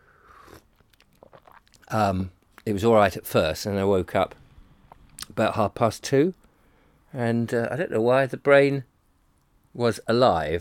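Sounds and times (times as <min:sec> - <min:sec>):
soft airy slurp from a cup of coffee: 0:00.2 - 0:01.9
speech: 0:01.9 - 0:04.4, 0:05.3 - 0:06.4, 0:07.1 - 0:08.9, 0:09.8 - 0:10.5.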